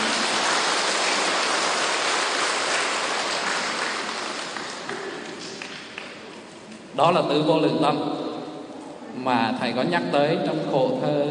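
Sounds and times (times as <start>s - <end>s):
audience applause at a Buddhist dharma talk: 0.0s - 6.3s
speech: 7.0s - 8.2s, 9.2s - 11.2s.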